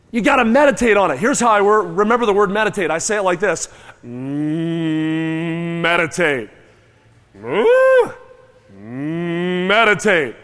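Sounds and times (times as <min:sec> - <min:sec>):
speech: 0:00.1 - 0:06.6, 0:07.4 - 0:08.2, 0:09.7 - 0:10.4
audience people imitating low nasal cow moos: 0:04.0 - 0:05.9, 0:07.4 - 0:09.7.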